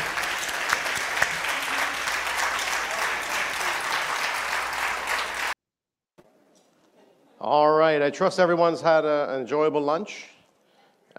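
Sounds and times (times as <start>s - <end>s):
audience applause for an ambassador: 0.0s - 5.6s
speech: 7.4s - 10.3s.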